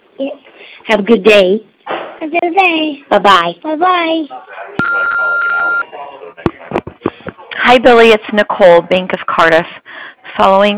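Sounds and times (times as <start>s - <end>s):
speech: 0.2s - 5.3s, 7.6s - 10.7s
answering machine beep: 4.8s - 5.9s.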